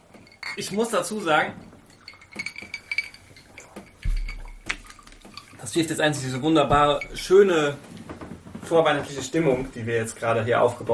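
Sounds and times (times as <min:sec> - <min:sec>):
glasses clinking in a toast: 0:00.0 - 0:08.0
speech: 0:00.6 - 0:01.7, 0:05.7 - 0:08.0, 0:08.7 - 0:10.9.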